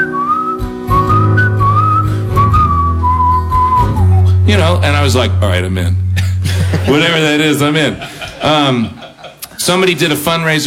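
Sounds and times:
person whistling a wavering melodic tune: 0.0s - 4.5s
steady low hum of music or instruments: 0.0s - 9.1s
speech: 4.5s - 9.0s, 9.6s - 10.6s
laughter: 6.2s - 9.7s.

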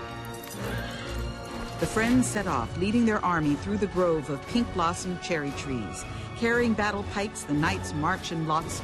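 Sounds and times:
horse hooves clattering: 0.2s - 2.7s
brief horse whinny: 0.5s - 1.9s
speech: 1.8s - 8.8s.

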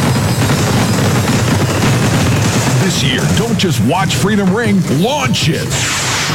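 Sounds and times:
fireworks exploding: 0.0s - 6.3s
speech: 3.0s - 6.3s.

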